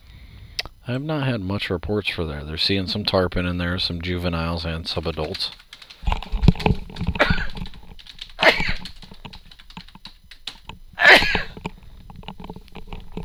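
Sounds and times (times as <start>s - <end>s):
speech: 0.9s - 7.1s
clicking and tapping of typing on a keyboard: 2.9s - 13.2s
person sneezing: 11.0s - 11.5s.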